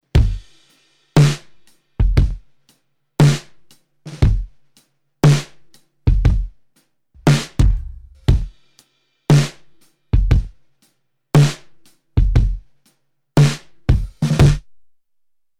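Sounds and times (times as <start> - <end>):
kick drum with effect: 0.2 - 0.4, 2.0 - 2.4, 4.2 - 4.6, 6.1 - 6.6, 7.2 - 8.6, 10.2 - 10.6, 12.2 - 12.7, 13.9 - 14.6
snare drum with effect: 5.2 - 5.6, 7.2 - 10.5, 11.4 - 11.7, 13.4 - 14.6.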